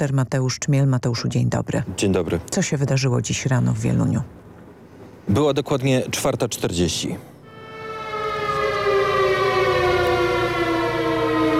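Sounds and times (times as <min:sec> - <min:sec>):
speech: 0:00.0 - 0:04.4, 0:05.3 - 0:07.3
civil defense alarm siren wailing in Wieluń Poland: 0:07.4 - 0:11.5.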